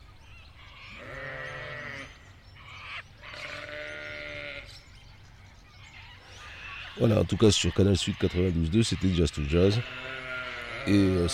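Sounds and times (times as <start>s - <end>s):
sheep bleating: 0.9s - 2.1s, 3.3s - 4.7s, 9.1s - 11.3s
speech: 7.0s - 10.2s, 10.8s - 11.3s.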